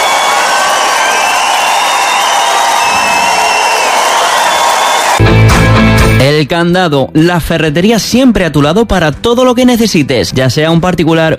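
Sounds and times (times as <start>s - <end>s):
large crowd whooping and shouting: 0.0s - 5.2s
large crowd clapping: 0.0s - 5.9s
speech: 6.4s - 11.3s.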